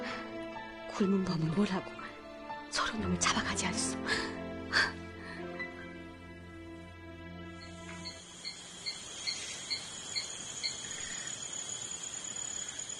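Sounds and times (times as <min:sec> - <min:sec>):
speech: 0:01.0 - 0:02.0, 0:02.7 - 0:04.9
cicadas buzzing in the woods beside a road: 0:07.6 - 0:12.9.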